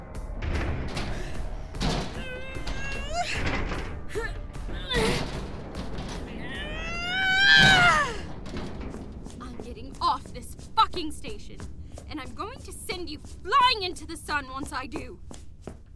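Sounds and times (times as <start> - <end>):
heavy banging on a door to break through it: 0.1 - 9.7
speech: 14.0 - 15.4.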